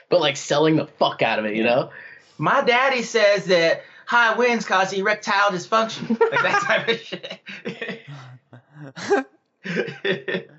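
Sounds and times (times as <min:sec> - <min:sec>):
speech: 0:00.1 - 0:07.7, 0:08.9 - 0:10.5
laughter: 0:05.9 - 0:10.5
person belching: 0:08.0 - 0:10.5.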